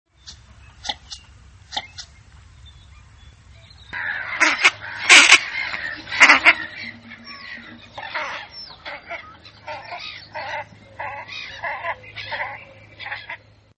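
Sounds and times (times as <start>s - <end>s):
Anas clypeata calling: 3.9s - 13.5s.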